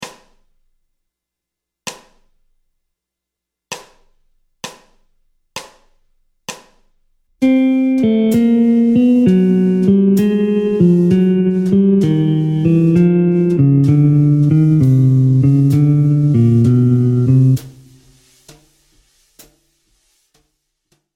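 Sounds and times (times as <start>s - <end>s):
jazz guitar playing descending bebop scale in C harmonic minor: 7.4s - 18.2s.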